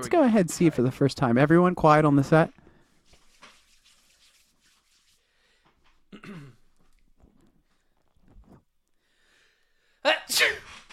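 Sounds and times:
speech: 0.0 - 2.6
quiet shuffling: 2.4 - 9.1
person fake sneezing: 10.1 - 10.8.

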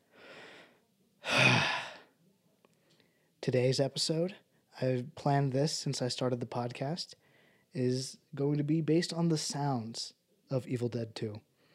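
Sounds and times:
person taking a big deep breath: 0.1 - 2.1, 7.2 - 7.7
speech: 3.4 - 11.5.

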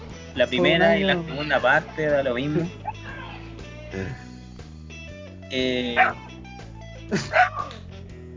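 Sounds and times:
speech: 0.4 - 3.0, 3.9 - 4.2, 5.5 - 6.2, 7.1 - 7.8
dog barking: 6.0 - 6.3, 7.2 - 7.8
laughter: 7.0 - 7.7.

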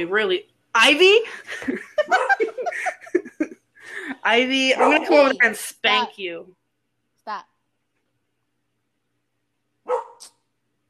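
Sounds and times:
speech: 0.0 - 2.4, 4.2 - 6.6, 7.2 - 7.5
laughter: 1.2 - 4.3
female dog barking at a house window: 2.1 - 2.6, 4.8 - 5.2, 9.9 - 10.3.

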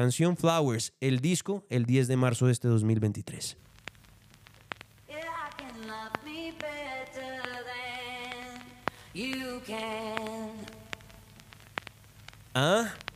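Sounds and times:
speech: 0.0 - 3.7, 9.2 - 10.7, 12.6 - 13.1
faint crackling static-like background: 0.0 - 13.1
sharp clicks: 3.8 - 13.1
lone voice singing a slow melody of sustained gliding notes: 5.1 - 11.3.

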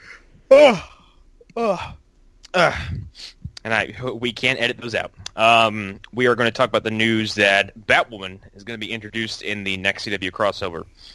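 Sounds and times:
speech: 0.5 - 0.9, 1.6 - 11.1
person yawning: 0.5 - 3.3.

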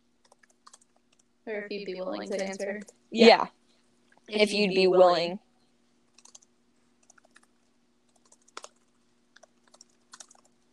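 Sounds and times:
faint steady electrical hum: 0.0 - 10.7
computer keyboard typing: 0.2 - 1.3, 6.1 - 10.7
speech: 1.5 - 3.6, 4.3 - 5.4.

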